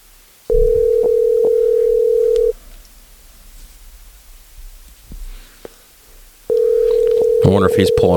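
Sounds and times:
phone ringback tone on a call to a man's phone: 0.5 - 2.6, 6.5 - 8.1
speech: 7.8 - 8.1.

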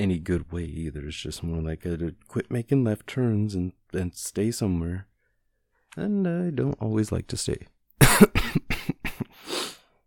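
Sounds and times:
speech: 0.0 - 5.1, 6.0 - 9.5
harsh coughs: 8.0 - 9.5.

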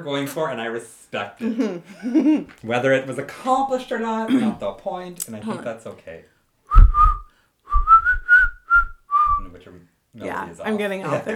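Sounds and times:
speech: 0.0 - 6.3, 9.6 - 11.3
laughter: 1.4 - 2.6
person whistling a short bright melody: 6.7 - 9.6.

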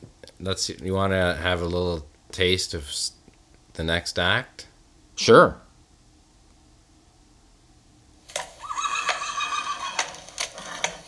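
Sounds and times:
speech: 0.4 - 3.2, 3.8 - 5.6
hooves clip-clopping: 8.4 - 10.5
horse neighing: 8.5 - 10.4.

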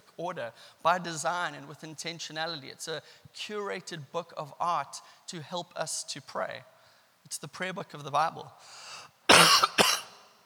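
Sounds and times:
speech: 0.2 - 6.7, 7.3 - 9.7
preacher coughing during a sermon: 9.3 - 10.2.

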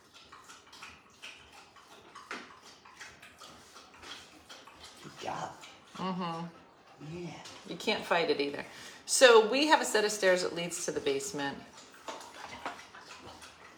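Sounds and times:
dogs lapping water: 0.0 - 13.7
speech: 5.3 - 11.7.

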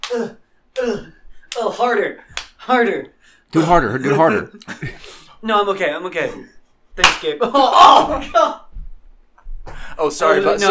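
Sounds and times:
slaps to a person's face: 0.0 - 1.7, 2.3 - 2.6, 7.0 - 7.3
speech: 0.1 - 8.6, 10.0 - 10.7.

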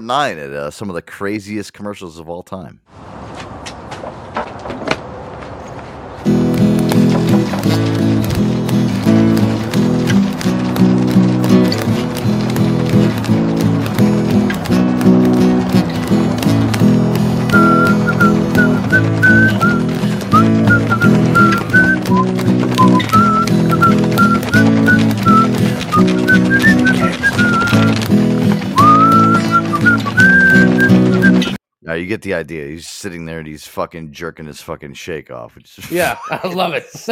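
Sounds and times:
speech: 0.0 - 3.2, 31.9 - 37.1
busy rhythmic musical backing: 6.4 - 31.4
man whistling a lively tune: 17.5 - 28.1, 28.8 - 31.6
laughter: 25.5 - 27.9, 35.8 - 37.1.

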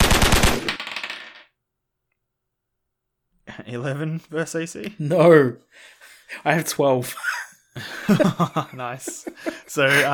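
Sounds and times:
submachine gun firing a rapid burst: 0.0 - 0.8
speech: 3.6 - 10.1
laughter: 7.0 - 10.1.

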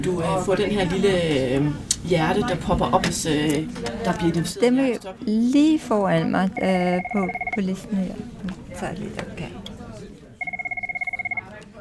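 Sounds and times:
speech: 0.0 - 9.6
telephone ringing with an incoming call: 6.6 - 7.7, 10.4 - 11.5.

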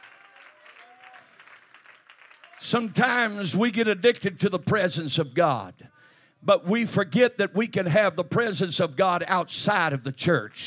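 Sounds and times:
audience applause from many people: 0.0 - 3.4
speech: 2.6 - 10.6.

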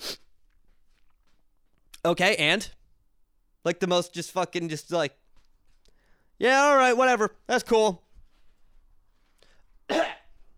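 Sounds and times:
quiet room noise: 0.0 - 10.5
speech: 2.0 - 2.8, 3.6 - 5.2, 6.4 - 8.0
fake cough: 9.9 - 10.4.

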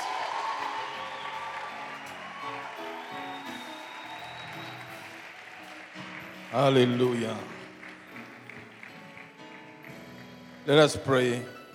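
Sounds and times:
shouts from the audience: 0.0 - 5.6
audience clapping and cheering: 0.0 - 11.7
speech: 6.5 - 7.5, 10.6 - 11.6.

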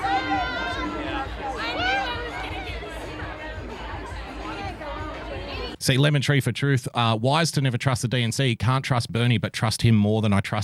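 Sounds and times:
small crowd of supporters chattering: 0.0 - 5.8
speech: 5.8 - 10.6.

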